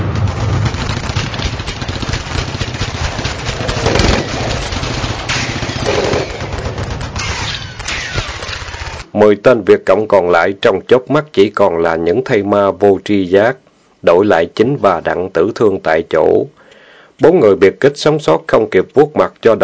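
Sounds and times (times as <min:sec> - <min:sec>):
automatic weapons gunfire bursts in a wartime jungle ambush: 0:00.2 - 0:09.0
speech: 0:09.2 - 0:16.6, 0:17.2 - 0:19.6.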